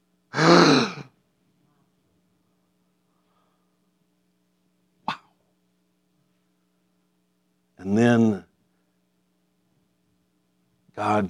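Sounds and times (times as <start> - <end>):
forceful breath blown out to imitate breathing life: 0.3 - 1.1
speech: 7.8 - 8.5, 11.0 - 11.2.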